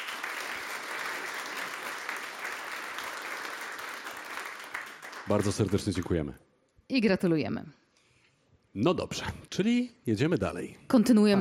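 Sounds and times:
audience applause at a history book award ceremony: 0.0s - 6.3s
speech: 5.3s - 7.8s, 8.7s - 11.3s.

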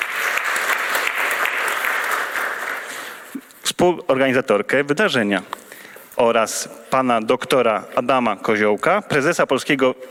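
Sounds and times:
audience applause welcoming guests at an event: 0.0s - 3.4s
speech: 3.8s - 5.6s, 6.2s - 10.1s.

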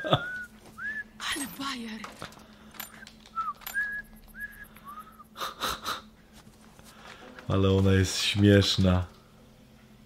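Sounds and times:
person whistling: 0.2s - 1.1s, 3.4s - 5.3s
speech: 1.6s - 2.4s, 7.5s - 9.2s.

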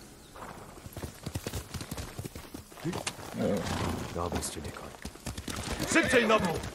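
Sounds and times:
horse hooves clip-clopping in a video game: 0.4s - 6.7s
speech: 2.8s - 5.0s, 5.9s - 6.7s.

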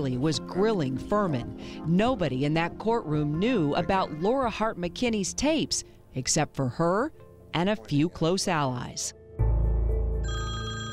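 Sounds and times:
speech: 0.0s - 9.5s
telephone ringing with an electronic trill: 10.2s - 10.9s.

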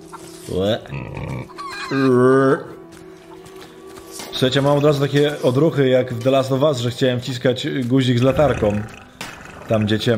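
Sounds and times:
speech: 0.5s - 2.7s, 4.4s - 9.0s, 9.7s - 10.1s
pigs squealing grunts in a chicken-coop farm building in a video game: 0.8s - 2.7s, 8.2s - 10.1s
pig snorting in a chicken-coop farm building in a video game: 8.2s - 10.1s.

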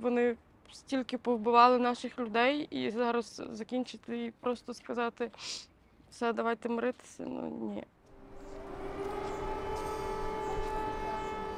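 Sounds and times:
speech: 0.1s - 8.0s
air raid warning siren wailing over a wide outdoor space: 8.1s - 11.5s.

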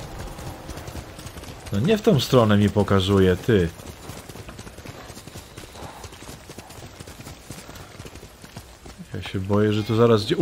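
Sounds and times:
constant rumble: 0.0s - 10.4s
horse hooves clip-clopping: 0.0s - 10.4s
speech: 1.7s - 3.9s, 9.3s - 10.4s.

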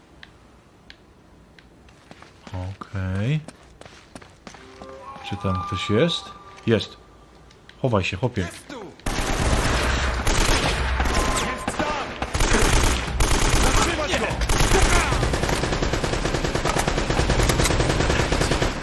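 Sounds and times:
speech: 2.5s - 4.0s, 5.3s - 7.0s, 7.8s - 8.7s
machine-gun fire: 9.1s - 18.8s
rapid gunshots: 9.1s - 18.8s.

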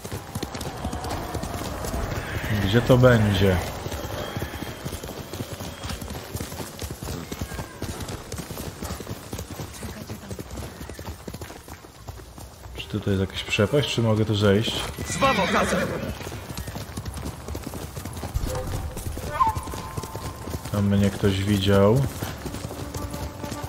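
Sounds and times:
horse whinnying: 0.0s - 6.0s, 14.8s - 16.4s, 18.4s - 20.6s
horse hooves clip-clopping: 0.0s - 23.6s
speech: 2.5s - 3.8s, 13.0s - 16.3s, 20.8s - 22.2s.

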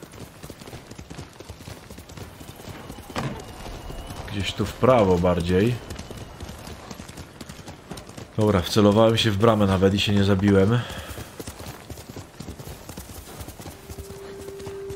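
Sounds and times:
horse hooves clip-clopping on a hard surface: 0.0s - 14.9s
speech: 4.4s - 5.9s, 8.4s - 11.1s.

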